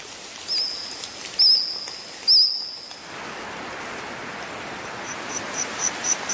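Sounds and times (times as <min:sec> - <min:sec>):
hissing background: 0:00.0 - 0:06.3
reconstructed Jurassic forest insects chirping and trilling: 0:00.2 - 0:06.3
steady buzzing drone: 0:02.9 - 0:06.3.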